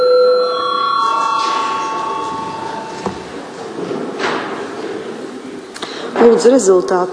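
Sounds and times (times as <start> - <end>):
parliamentary voting bell with sustained electronic tone: 0.0 - 3.7
murmur of a large hall: 0.0 - 7.1
soft thud: 3.0 - 4.6
speech: 6.2 - 7.1.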